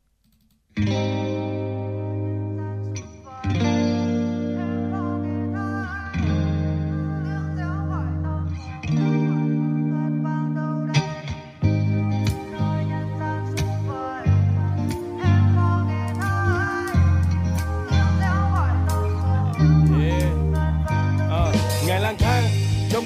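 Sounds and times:
effect-heavy electric guitar chords on the radio: 0.8 - 23.0
band section with drums on the radio: 21.4 - 23.0.

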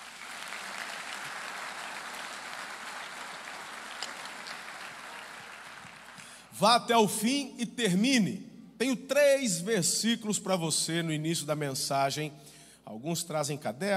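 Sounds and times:
large crowd applauding in a big room: 0.0 - 6.5
speech: 6.6 - 13.9.

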